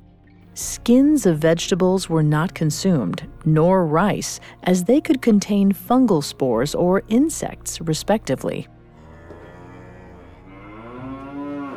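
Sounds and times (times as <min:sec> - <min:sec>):
speech: 0:00.6 - 0:08.8
cow mooing: 0:09.0 - 0:11.7.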